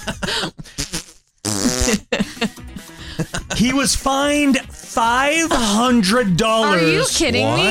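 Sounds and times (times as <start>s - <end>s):
loud buzzy sputtering farts: 0.8s - 2.1s
speech: 3.6s - 7.6s.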